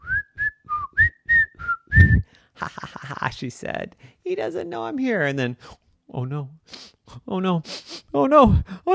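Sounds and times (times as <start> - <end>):
father whistling a bouncy tune while walking past a door: 0.0 - 2.3
speech: 2.1 - 8.9.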